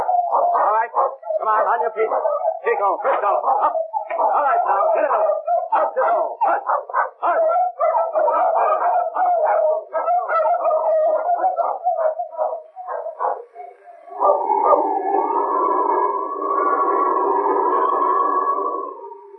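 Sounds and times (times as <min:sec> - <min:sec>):
sled dogs barking and yelping: 0:00.0 - 0:19.0
speech: 0:00.8 - 0:10.0.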